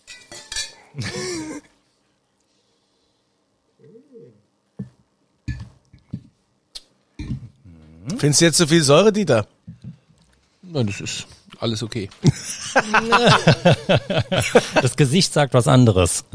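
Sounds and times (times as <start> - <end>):
wine glasses clinking in a toast: 0.0 - 0.8
speech: 1.0 - 1.6, 8.2 - 9.6, 10.8 - 16.3
murmured voice: 3.8 - 4.4, 7.3 - 8.2
laughter: 12.2 - 15.0.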